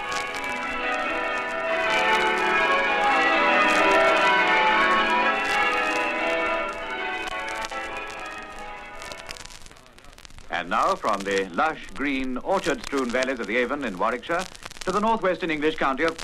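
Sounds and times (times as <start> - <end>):
peal of church bells over the River Avon in Warwickshire England: 0.0 - 9.6
speech: 10.8 - 16.2.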